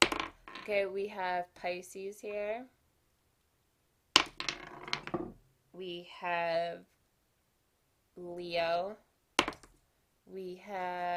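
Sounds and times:
astrological dice being rolled and clattering: 0.0s - 0.8s, 4.2s - 5.4s, 9.4s - 9.8s
speech: 0.7s - 2.8s, 5.8s - 7.0s, 8.2s - 9.1s, 10.3s - 11.1s.

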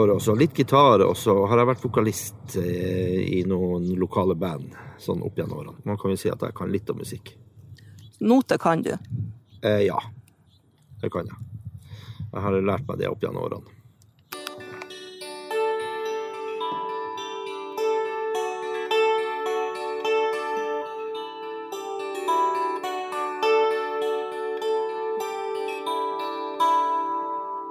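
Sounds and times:
speech: 0.0s - 7.5s, 8.2s - 10.2s, 11.0s - 11.5s, 12.3s - 13.8s
newly made kantele zither of pine and birch plucked in a ringing melody: 14.3s - 27.7s.

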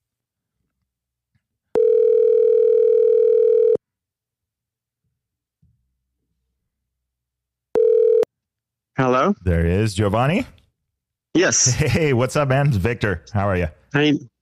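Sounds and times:
electronic telephone ringback tone of an outgoing phone call: 1.8s - 3.8s, 7.8s - 8.3s
speech: 9.3s - 10.6s, 11.4s - 14.3s.

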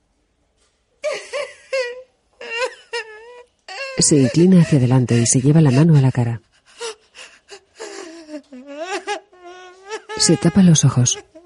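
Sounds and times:
woman bursting into tears, wailing sobs: 1.0s - 11.4s
speech: 4.0s - 6.5s, 10.3s - 11.4s.

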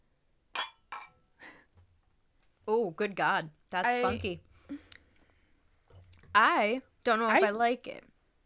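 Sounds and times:
softer clatter of glass: 0.6s - 1.2s
wine glasses clinking together in a toast: 0.6s - 1.2s
speech: 2.8s - 4.8s, 6.4s - 8.1s.

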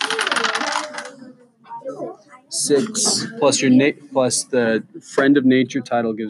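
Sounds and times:
dice rattling and tumbling across a hard tabletop: 0.0s - 1.1s
speech: 2.5s - 6.2s.

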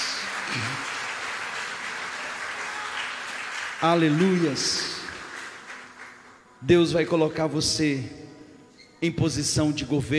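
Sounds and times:
crowd applauding loudly: 0.0s - 6.7s
cheer or shout from the crowd: 2.6s - 3.2s
speech: 3.8s - 5.0s, 6.6s - 8.2s, 9.0s - 10.1s.

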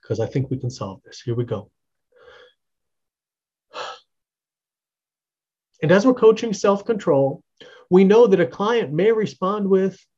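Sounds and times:
speech: 0.1s - 1.8s, 5.8s - 10.1s
deep breaths taken during a self-control coaching exercise: 2.1s - 2.7s, 7.6s - 7.9s.

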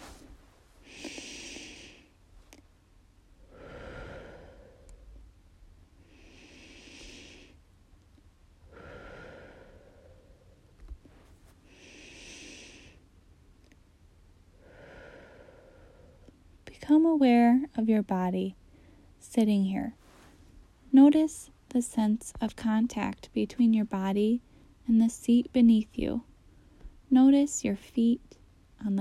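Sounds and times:
deep slow breathing: 0.0s - 2.2s, 3.4s - 5.3s, 6.0s - 7.7s, 8.6s - 10.8s, 11.6s - 13.1s, 14.6s - 16.4s
speech: 16.8s - 18.6s, 19.4s - 20.0s, 21.0s - 26.3s, 27.1s - 28.9s.

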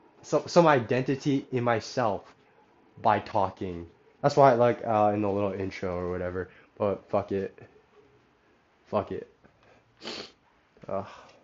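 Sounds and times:
speech: 0.2s - 2.4s, 3.0s - 7.8s, 8.9s - 9.3s, 10.9s - 11.3s
sick person sniffling: 10.0s - 10.4s.

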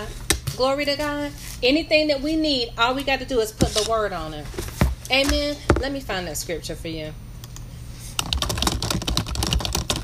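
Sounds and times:
speech: 0.0s - 7.2s
quiet hum: 0.0s - 10.0s
fast typing on a computer keyboard: 8.2s - 10.0s.

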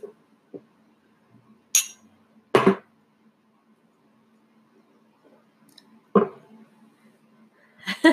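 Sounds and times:
glasses clinking in a toast: 1.8s - 2.0s.

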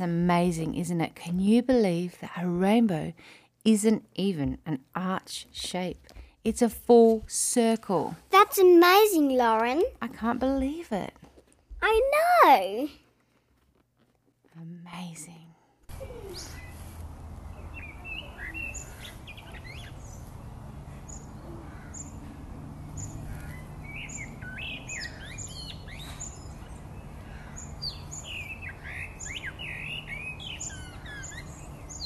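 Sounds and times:
speech: 0.0s - 13.0s, 14.6s - 15.4s
birds chirping and tweeting in an evening chorus: 15.9s - 32.0s.

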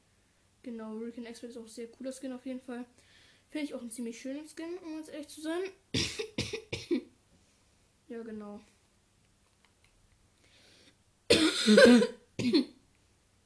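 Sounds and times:
speech: 0.6s - 6.3s, 8.1s - 8.8s, 11.6s - 12.8s
sharp coughs with a rasping tail: 6.0s - 7.0s, 11.3s - 12.8s.

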